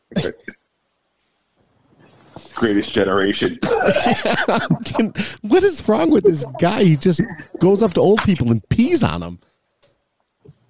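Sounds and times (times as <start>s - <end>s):
person imitating someone coughing: 0.1s - 0.6s, 3.6s - 5.3s
speech: 2.6s - 9.5s
laughter: 3.8s - 7.7s.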